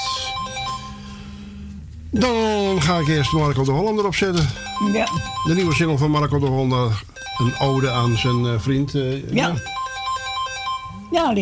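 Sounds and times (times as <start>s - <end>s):
low sustained hum: 0.0s - 9.6s
telephone with bright warbling electronic ringtone: 0.0s - 11.4s
speech: 2.1s - 9.8s, 11.1s - 11.4s.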